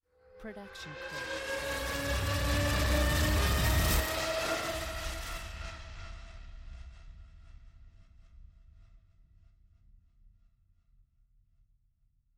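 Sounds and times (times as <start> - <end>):
long buzzing riser: 0.6 - 6.2.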